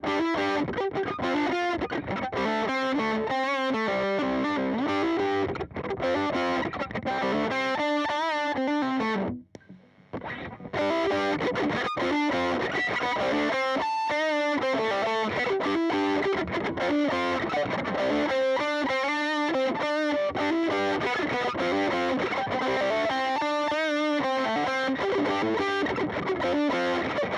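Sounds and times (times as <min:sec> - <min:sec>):
guitar through stacked overdrive booster and fuzz: 0:00.0 - 0:27.3.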